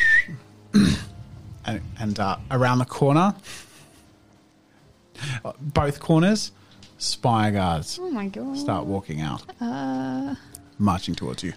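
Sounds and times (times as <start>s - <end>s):
person whistling a signal: 0.0s - 0.4s
person clearing throat: 0.7s - 1.2s
speech: 1.7s - 3.7s, 5.4s - 11.5s.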